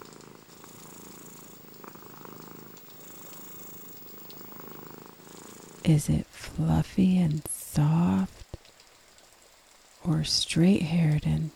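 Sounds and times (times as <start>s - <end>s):
sleepy cat purring while napping: 0.0s - 8.4s
speech: 5.9s - 8.4s, 10.1s - 11.5s.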